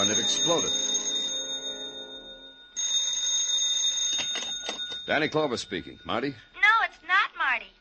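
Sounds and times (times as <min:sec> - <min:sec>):
loud shrill electric telephone bell ringing: 0:00.0 - 0:07.6
speech: 0:00.3 - 0:00.9, 0:05.1 - 0:06.5
rattling clangs: 0:04.0 - 0:05.6.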